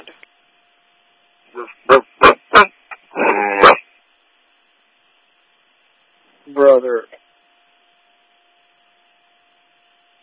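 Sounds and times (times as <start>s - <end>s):
large dog barking: 1.6s - 3.8s.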